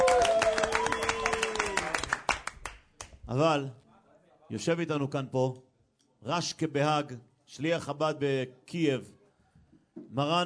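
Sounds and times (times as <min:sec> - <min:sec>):
audience applause: 0:00.0 - 0:02.8
speech: 0:03.3 - 0:03.8, 0:04.5 - 0:09.2, 0:10.0 - 0:10.4.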